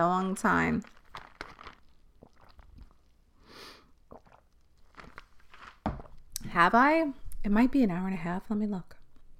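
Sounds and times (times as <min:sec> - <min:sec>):
speech: 0:00.0 - 0:01.0, 0:06.5 - 0:09.0
person sipping a drink: 0:00.8 - 0:05.8
small wet mouth clicks and swallows: 0:01.2 - 0:03.2, 0:03.9 - 0:05.4.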